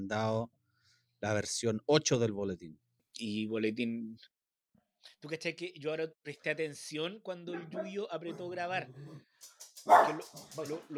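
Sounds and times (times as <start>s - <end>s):
speech: 0.0s - 0.6s, 1.2s - 4.3s, 5.1s - 10.9s
small dog barking: 9.9s - 10.4s.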